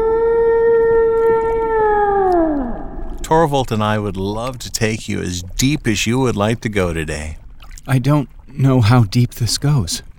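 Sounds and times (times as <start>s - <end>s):
whale call: 0.0s - 3.7s
speech: 3.3s - 10.1s.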